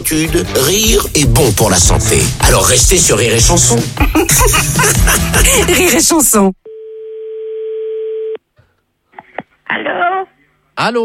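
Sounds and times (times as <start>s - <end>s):
speech: 0.0s - 6.6s, 9.7s - 11.0s
laughter: 4.0s - 6.1s
telephone busy tone after a call is hung up: 6.7s - 8.4s.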